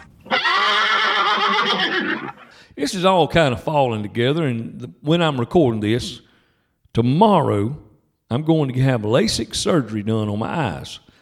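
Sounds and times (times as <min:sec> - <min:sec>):
horse neighing: 0:00.0 - 0:02.6
speech: 0:02.2 - 0:06.2, 0:06.9 - 0:11.0.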